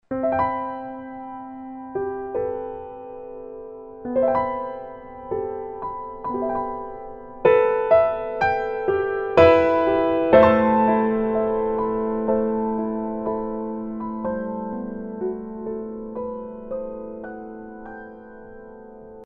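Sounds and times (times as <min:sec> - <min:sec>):
piano ringtone on Verykool S757 phone: 0:00.1 - 0:19.2.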